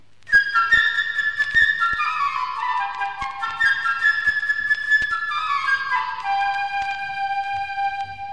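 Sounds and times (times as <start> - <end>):
solo flute playing trilling runs in an ascending scale: 0.3 - 8.3.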